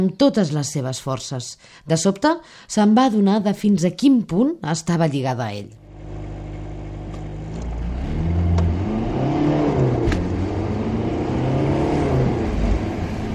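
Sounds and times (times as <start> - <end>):
speech: 0.0 - 6.3
car engine revving and pulling away while accelerating: 5.9 - 13.3.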